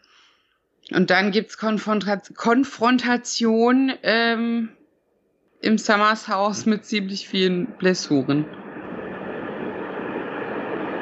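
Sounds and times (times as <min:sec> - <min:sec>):
speech: 0:00.9 - 0:04.8, 0:05.6 - 0:08.6
train rumbling past: 0:06.5 - 0:10.9.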